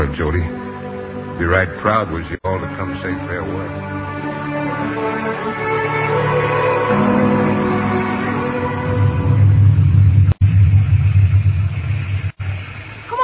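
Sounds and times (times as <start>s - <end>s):
speech: 0.0s - 0.7s, 1.4s - 4.2s
rain: 0.0s - 13.2s
deep rumbling: 6.9s - 13.2s
storm wind: 6.9s - 13.2s.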